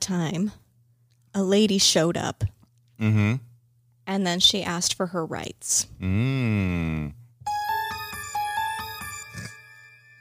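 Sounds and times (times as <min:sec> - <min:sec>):
speech: 0:00.1 - 0:00.6, 0:01.3 - 0:03.5, 0:04.1 - 0:07.2
phone ringing with a bright electronic chiming melody: 0:07.4 - 0:10.1.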